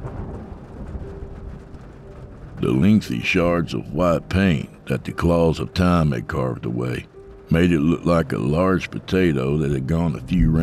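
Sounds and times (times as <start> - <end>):
low rolling thunder: 0.0 - 10.6
rain: 0.0 - 10.6
speech: 2.6 - 10.6.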